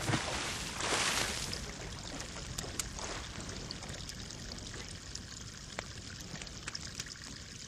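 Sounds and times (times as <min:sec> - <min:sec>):
water splashing as a half shell is thrown in: 0:00.0 - 0:07.4.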